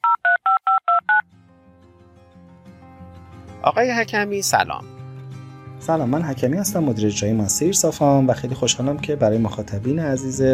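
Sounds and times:
phone keypad beeps dialing a number: 0:00.0 - 0:01.2
speech: 0:03.6 - 0:04.9, 0:05.8 - 0:10.5.

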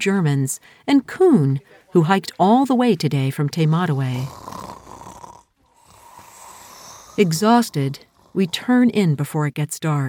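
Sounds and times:
speech: 0:00.0 - 0:04.7, 0:07.2 - 0:10.0
people snoring on plastic mattresses in a mountain trail hut: 0:03.6 - 0:09.0.

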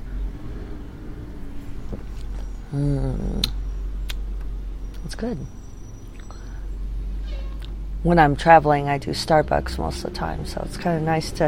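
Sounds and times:
garbage truck engine drone: 0:00.0 - 0:11.4
person humming: 0:02.7 - 0:03.6
speech: 0:02.7 - 0:03.6, 0:05.1 - 0:05.6, 0:08.0 - 0:11.4.

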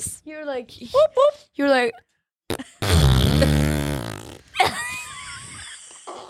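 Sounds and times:
speech: 0:00.6 - 0:03.6
long low buzzing fart: 0:02.5 - 0:04.5, 0:06.0 - 0:06.2.

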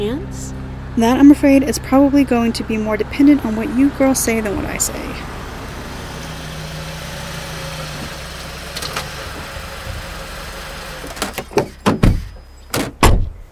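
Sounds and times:
speech: 0:00.0 - 0:05.4
car engine idling: 0:00.0 - 0:12.8
car doors opening and slamming shut: 0:05.3 - 0:13.4.

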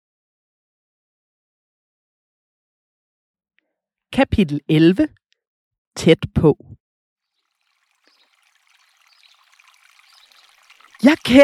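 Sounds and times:
speech: 0:04.1 - 0:05.2, 0:06.0 - 0:06.8, 0:11.0 - 0:11.4
small brook trickling water: 0:07.3 - 0:11.4.

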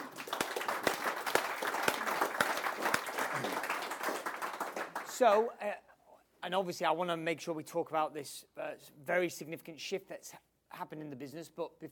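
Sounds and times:
crowd applauding: 0:00.0 - 0:05.5
sharper distinct hand claps: 0:00.0 - 0:05.5
speech: 0:05.2 - 0:11.9.

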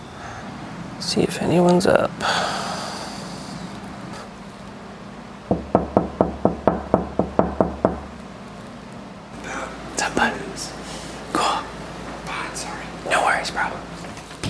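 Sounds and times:
speech: 0:01.0 - 0:02.6
knocking on a bedroom door: 0:05.5 - 0:08.1
people whispering: 0:09.4 - 0:13.9.

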